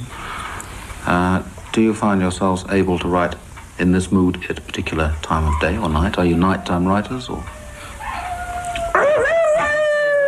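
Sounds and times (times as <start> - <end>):
speech: 1.2 - 7.6
seven-week-old puppy howling: 5.4 - 10.2.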